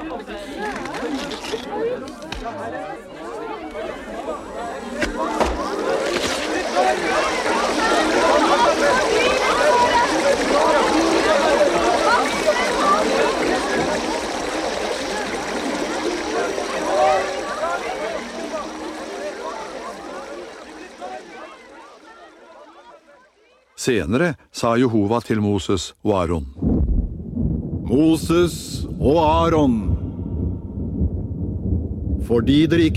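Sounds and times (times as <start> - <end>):
crowd of voices clamoring and chattering excitedly: 0.0 - 24.0
speech: 2.0 - 3.1, 23.9 - 26.6, 27.9 - 29.9, 32.3 - 32.9
water gushing out of a split rock: 5.1 - 22.3, 26.6 - 32.9.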